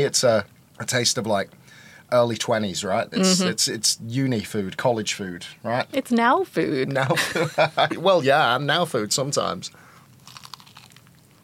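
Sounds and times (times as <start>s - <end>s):
speech: 0.0s - 9.8s
laughter: 6.9s - 8.3s
person biting into crispy fried chicken: 10.1s - 11.4s.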